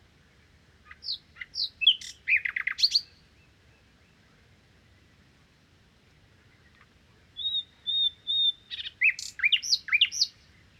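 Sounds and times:
common nightingale song in Crau, Bouches-du-Rhône, France: 0.4s - 4.3s, 6.4s - 10.7s.

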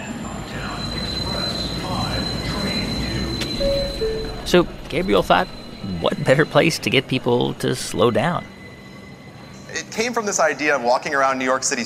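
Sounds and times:
subway train rumbling through Fulton Center station in Manhattan: 0.0s - 11.8s
thin high metallic whine: 0.5s - 9.7s
speech: 4.5s - 8.6s, 9.7s - 11.8s.

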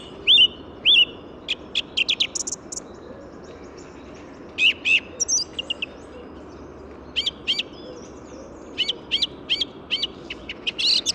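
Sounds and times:
city and motorway noise with south wind: 0.0s - 11.1s
song thrush singing before daybreak in an urban park in the Paris region, France: 0.0s - 11.1s.

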